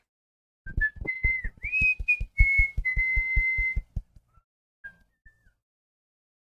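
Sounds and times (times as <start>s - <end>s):
high-pitched whistle: 0.7s - 3.9s
low rhythmic thumps: 0.7s - 4.3s.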